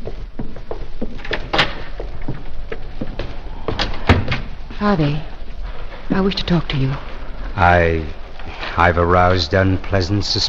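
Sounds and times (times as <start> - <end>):
door opening and shutting: 1.2 - 2.3, 3.7 - 5.0
speech: 4.8 - 5.3, 6.1 - 8.2, 8.8 - 10.4.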